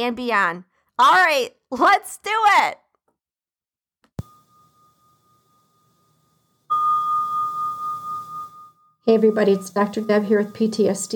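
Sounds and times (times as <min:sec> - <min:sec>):
speech: 0:00.0 - 0:02.8, 0:09.0 - 0:11.1
bell struck once and ringing: 0:04.2 - 0:11.1.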